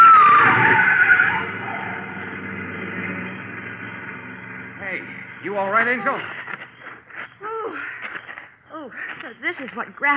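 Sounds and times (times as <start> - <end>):
tires of a big baby blue convertible screeching in a skid: 0.0 - 6.2
speech: 5.6 - 6.4, 9.3 - 10.1.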